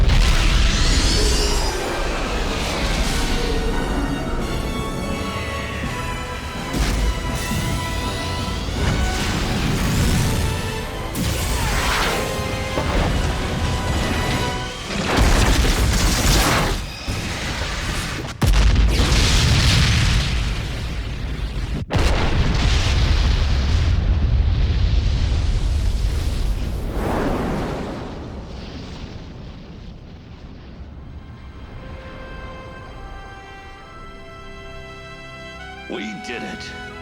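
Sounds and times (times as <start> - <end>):
artillery batteries firing on a station: 0.0 - 31.4.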